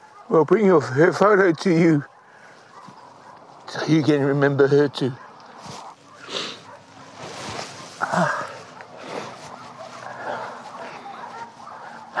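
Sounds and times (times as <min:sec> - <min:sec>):
speech: 0:00.3 - 0:02.1, 0:03.8 - 0:05.8
puppy yipping and barking: 0:02.0 - 0:04.0, 0:05.1 - 0:08.0, 0:09.3 - 0:12.1.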